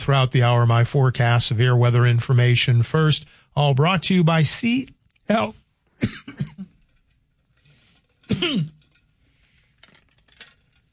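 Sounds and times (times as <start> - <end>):
speech: 0.0 - 6.6, 8.3 - 8.8
rough throat clearing and coughing from a dry throat: 6.0 - 6.8, 8.3 - 8.8.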